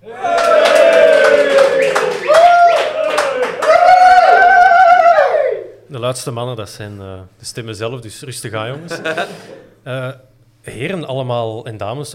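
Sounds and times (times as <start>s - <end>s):
live audience cheering and shouting in a football club canteen: 0.0s - 5.7s
scattered clapping: 0.2s - 4.4s
speech: 6.1s - 12.1s
laughter: 8.7s - 9.8s.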